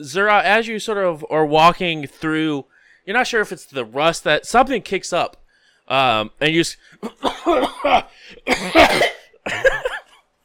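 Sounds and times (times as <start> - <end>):
speech: 0.0 - 9.9
loud harsh throaty coughing: 7.0 - 10.2.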